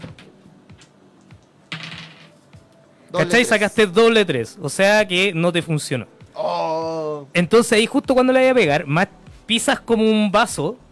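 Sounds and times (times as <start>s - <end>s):
two dice rolled in a game clattering across a hard surface: 1.7s - 2.5s
speech: 3.1s - 6.6s, 7.2s - 10.8s.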